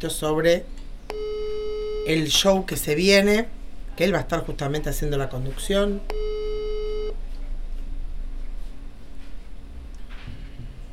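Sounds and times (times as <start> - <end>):
speech: 0.0 - 1.2, 2.0 - 6.2
telephone line beep while a call is placed: 1.1 - 2.4, 6.1 - 7.2.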